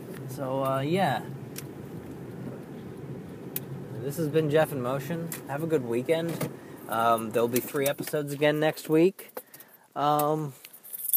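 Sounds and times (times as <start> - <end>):
speech: 0.4 - 1.4, 4.0 - 9.4, 10.0 - 10.6
bunch of keys dropping and jingling: 10.6 - 11.1.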